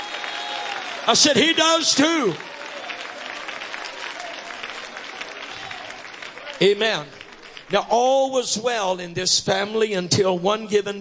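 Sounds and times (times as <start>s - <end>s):
voices cheering: 0.0s - 7.7s
large crowd clapping: 0.0s - 8.4s
speech: 1.0s - 2.5s, 6.6s - 11.0s.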